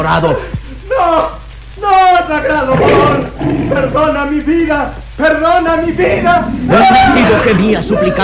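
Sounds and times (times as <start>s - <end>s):
speech: 0.0s - 8.2s
gigantic tiger roaring menacingly: 2.7s - 4.2s, 5.8s - 7.6s.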